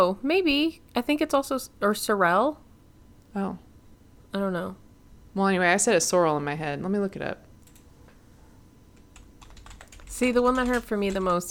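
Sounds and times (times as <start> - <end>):
speech: 0.0 - 2.6, 3.3 - 3.7, 4.3 - 7.4, 10.2 - 11.4
computer keyboard typing: 7.6 - 7.9, 9.0 - 11.4.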